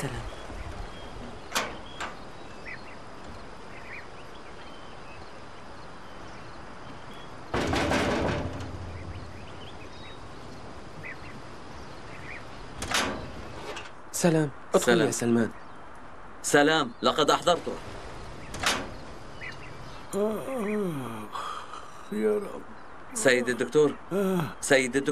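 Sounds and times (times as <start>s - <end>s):
door closing: 1.3s - 2.3s, 7.5s - 10.7s, 12.6s - 13.9s, 18.4s - 19.6s
rattling thud of door: 1.4s - 2.4s, 7.4s - 14.0s, 18.4s - 19.7s
door lock clacking: 12.8s - 13.3s, 18.5s - 19.0s
speech: 14.2s - 15.6s, 16.4s - 18.0s, 20.1s - 21.2s, 22.1s - 25.1s.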